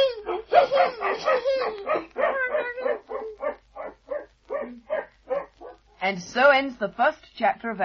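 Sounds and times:
puppy yipping and whimpering in high-pitched cries: 0.2 - 5.8
speech: 6.1 - 7.8.

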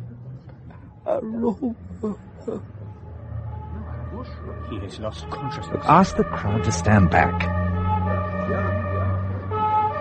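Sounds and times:
speech: 1.1 - 2.8, 4.2 - 7.7
ambulance siren at an accident scene: 2.7 - 9.9.

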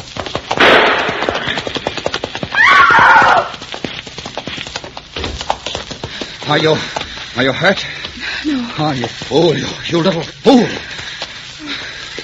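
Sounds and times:
galloping horse hooves: 0.0 - 12.2
gunshot: 0.6 - 1.7
horse shrill whinny: 2.5 - 3.5
speech: 6.5 - 11.0.

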